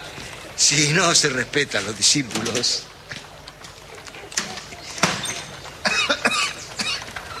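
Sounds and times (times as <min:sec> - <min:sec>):
speech: 0:00.6 - 0:03.0
person with a slight cough giving harsh dry coughs: 0:05.8 - 0:07.1.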